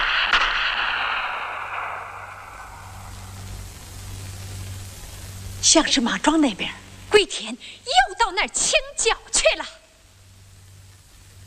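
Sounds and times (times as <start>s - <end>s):
distant gunshot: 0.0s - 3.4s
steady hissing background: 0.0s - 11.4s
speech: 5.7s - 9.8s.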